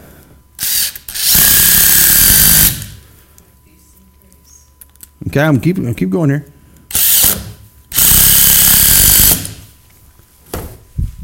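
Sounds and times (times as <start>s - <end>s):
power drill driving screws into a board: 0.6s - 2.9s, 6.9s - 9.6s
speech: 5.3s - 6.6s.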